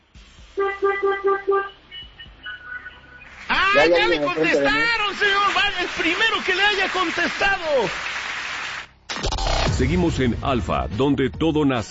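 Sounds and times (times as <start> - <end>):
fainter horn tones: 0.5 - 2.4
car horn honking: 0.6 - 2.1
speech: 3.8 - 8.2, 9.8 - 11.8.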